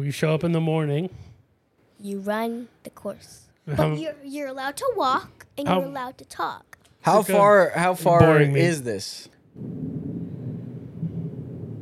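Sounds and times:
speech: 0.0 - 1.3, 2.0 - 10.0
distant thunder rumbling: 9.5 - 11.8.

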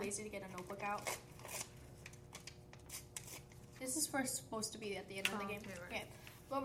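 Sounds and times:
speech: 0.0 - 1.7, 3.8 - 6.6
scissors cutting paper: 0.0 - 3.6.

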